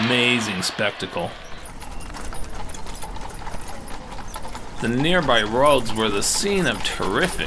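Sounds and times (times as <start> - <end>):
speech: 0.1 - 1.5, 4.8 - 7.4
horses trotting on a hard road pulling horse-drawn vehicles: 0.2 - 7.4
rumble of horse-drawn vehicle wheels: 1.3 - 7.4.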